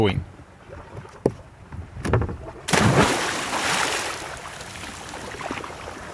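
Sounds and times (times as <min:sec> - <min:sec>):
speech: 0:00.0 - 0:00.3
churning sloshing water: 0:00.6 - 0:06.1
woman jumping and splashing into cold water: 0:02.7 - 0:06.0.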